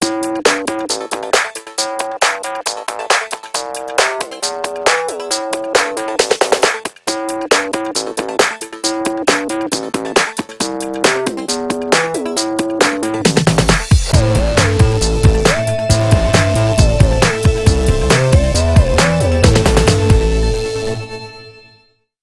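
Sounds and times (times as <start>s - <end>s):
mobile phone ringtone beats: 0.0s - 21.1s.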